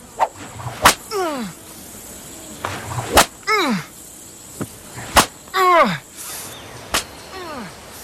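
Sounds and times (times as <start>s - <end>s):
whip cracks in a courtyard: 0.2s - 1.1s, 2.6s - 3.4s, 5.0s - 5.4s, 6.9s - 7.2s.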